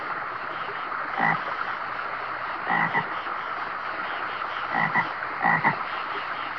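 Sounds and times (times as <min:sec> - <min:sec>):
flowing river water: 0:00.0 - 0:06.5
frog croaking: 0:01.2 - 0:01.4, 0:02.7 - 0:03.3, 0:04.2 - 0:05.8.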